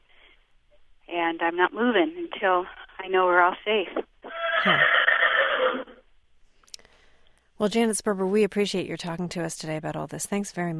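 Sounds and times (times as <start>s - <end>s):
speech: 1.1s - 5.0s, 7.6s - 10.7s
horse whinnying in barn stalls at a fairgrounds: 4.3s - 6.1s.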